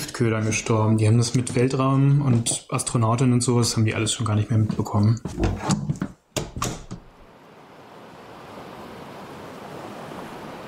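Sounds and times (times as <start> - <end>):
speech: 0.2 - 6.0
sharp knocks: 5.3 - 7.2
rushing wash of ocean water and surf: 7.1 - 10.6.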